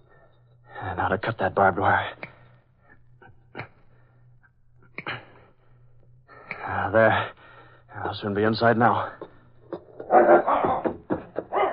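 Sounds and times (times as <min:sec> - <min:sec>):
speech: 0:01.0 - 0:02.3, 0:06.8 - 0:07.4, 0:08.0 - 0:09.3
police dogs barking and yelping: 0:10.0 - 0:11.7.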